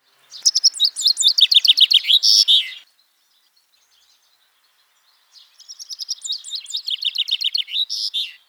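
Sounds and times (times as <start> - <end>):
young Fringilla coelebs chaffinch calling: 0.3 - 2.8, 5.6 - 8.4.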